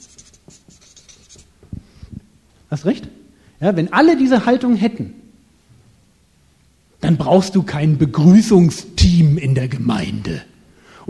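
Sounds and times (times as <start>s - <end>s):
pen writing on paper: 0.0s - 1.6s
speech: 2.7s - 5.2s, 7.1s - 10.5s.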